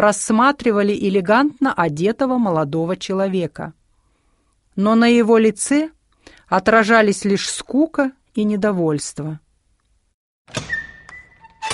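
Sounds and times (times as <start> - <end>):
speech: 0.0 - 3.8, 4.8 - 9.4, 10.5 - 10.7
door at a railway station flung open: 10.5 - 11.7.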